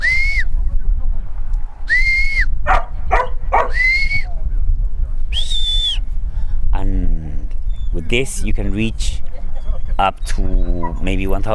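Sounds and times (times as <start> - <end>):
high-pitched whistle giving a sheepdog the stop command: 0.0 - 0.5, 1.8 - 2.6, 3.6 - 4.4, 5.3 - 6.0
low rumble of outdoor noise: 0.0 - 11.5
speech: 8.1 - 9.2, 10.0 - 11.5.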